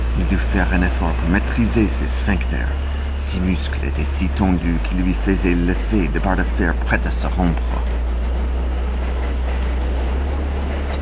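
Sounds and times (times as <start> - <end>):
train rumbling with heavy low drone: 0.0 - 10.9
speech: 0.2 - 7.9.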